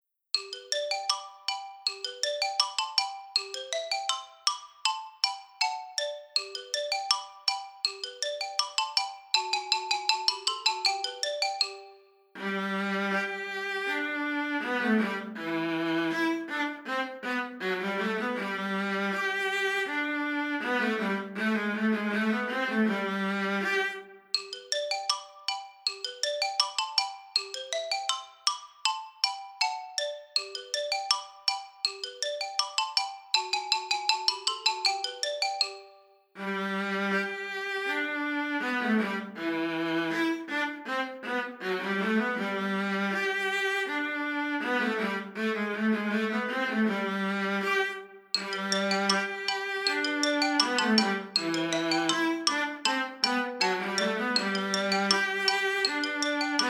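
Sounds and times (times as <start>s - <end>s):
xylophone: 0.3s - 12.6s, 23.7s - 36.4s, 48.3s - 56.6s
viola: 12.4s - 24.3s, 36.4s - 56.6s.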